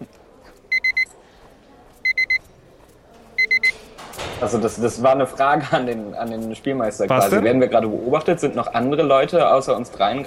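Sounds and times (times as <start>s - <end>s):
pager-style electronic beeps from a device in a hospital corridor: 0.7s - 1.1s, 2.0s - 2.5s, 3.4s - 3.8s
speech: 4.4s - 10.2s.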